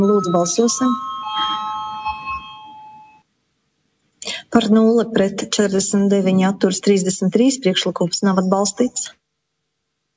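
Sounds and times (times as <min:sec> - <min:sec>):
speech: 0:00.0 - 0:01.1, 0:04.6 - 0:09.2
electric voting bell ringing in a parliament chamber: 0:00.0 - 0:03.2.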